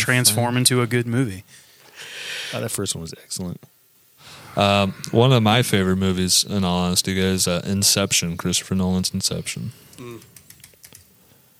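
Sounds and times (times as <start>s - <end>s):
speech: 0.0s - 10.4s
hard rapid typing on a computer keyboard: 10.4s - 11.5s.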